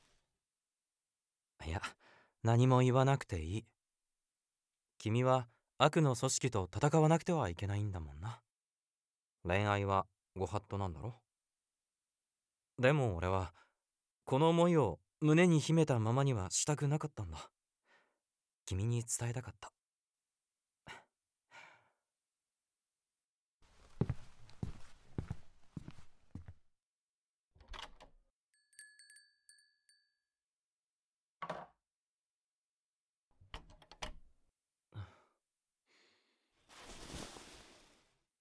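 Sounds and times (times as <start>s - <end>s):
speech: 1.6s - 3.8s, 5.0s - 8.4s, 9.4s - 11.2s, 12.8s - 13.6s, 14.3s - 17.6s, 18.7s - 19.8s
quiet footsteps: 23.7s - 26.6s
breathy sigh: 34.9s - 36.4s
soft rustle: 36.7s - 38.2s.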